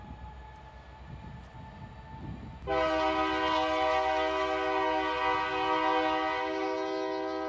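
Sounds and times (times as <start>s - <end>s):
low rail noise: 0.0s - 7.4s
passenger train rumbling past in York Alabama USA: 0.0s - 7.4s
loud sustained passenger train horn blast: 2.7s - 7.4s.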